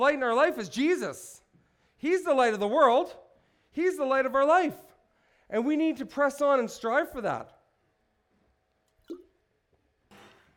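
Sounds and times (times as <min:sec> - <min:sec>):
speech: 0:00.0 - 0:01.4, 0:02.0 - 0:04.9, 0:05.5 - 0:07.6
water drop plopping: 0:09.0 - 0:09.4.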